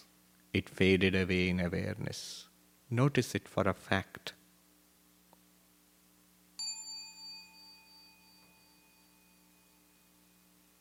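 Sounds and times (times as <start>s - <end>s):
faint steady low hum: 0.0s - 10.8s
speech: 0.5s - 4.4s
single bell struck, ringing with a bright clear tone: 6.6s - 10.8s.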